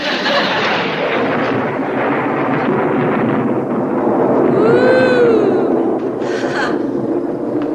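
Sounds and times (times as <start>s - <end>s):
laughter: 0.0s - 1.4s
rain: 0.0s - 7.7s
rising and falling tonal whine: 0.0s - 7.7s
thunder rumbling: 0.0s - 7.7s.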